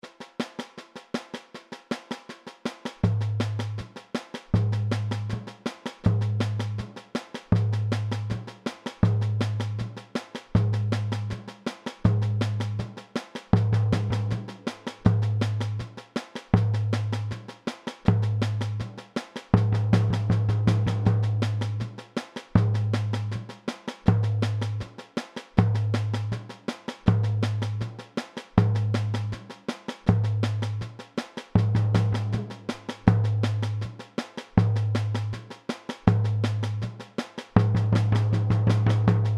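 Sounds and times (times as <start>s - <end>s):
samba music variations: 0.1s - 39.3s.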